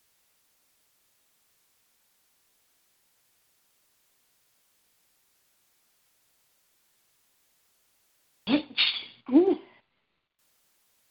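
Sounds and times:
person sneezing: 8.5s - 9.7s.

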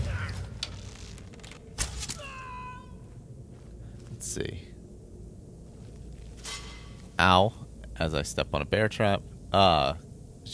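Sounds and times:
low rumble: 0.0s - 10.5s
door creaking open with a whining squeal: 0.2s - 2.5s
speech: 4.4s - 4.7s, 7.2s - 10.5s.

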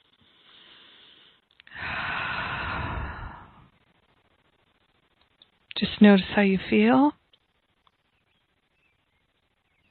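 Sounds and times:
person taking a deep breath during a grounding meditation: 0.3s - 3.7s
speech: 5.8s - 7.2s.

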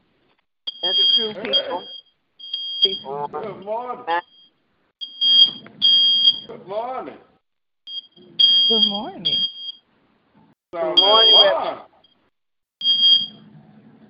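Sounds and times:
people talking on a phone line: 0.7s - 2.1s, 2.8s - 5.7s, 8.0s - 9.6s, 10.8s - 12.0s
high-pitched electronic alarm beeps: 0.7s - 3.2s, 4.1s - 6.5s, 7.9s - 9.8s, 11.0s - 12.2s, 12.8s - 13.4s
speech: 0.8s - 2.0s, 2.8s - 4.2s, 6.7s - 7.3s, 8.7s - 9.6s, 10.8s - 11.9s.

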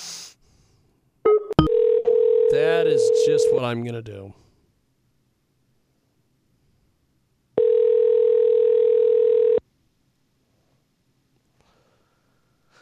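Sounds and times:
phone line ringing tone on a call to a doctor: 1.3s - 3.6s, 7.6s - 9.6s
speech: 2.5s - 4.4s.

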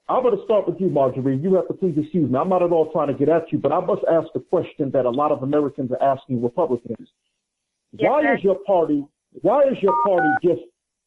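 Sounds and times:
speech: 0.1s - 7.3s, 7.9s - 10.7s
telephone keypad dialing tones on a phone line: 9.9s - 10.4s.

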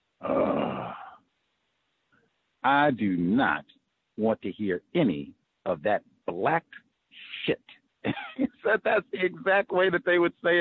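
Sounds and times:
person imitating a groan of weary disgust: 0.2s - 1.1s
speech: 2.6s - 10.6s
laughter: 2.7s - 3.5s, 4.2s - 6.6s, 8.1s - 10.6s.

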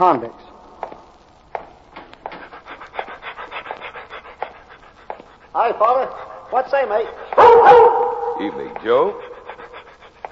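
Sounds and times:
speech: 0.0s - 0.5s, 5.6s - 9.2s
dog panting: 2.2s - 10.3s.

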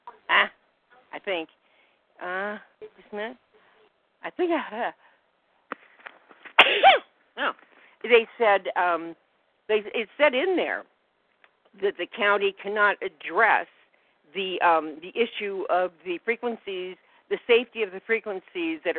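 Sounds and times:
speech: 1.2s - 1.6s, 2.2s - 3.5s, 4.2s - 5.0s, 7.4s - 10.9s, 11.7s - 18.9s
person sneezing: 6.5s - 7.1s.

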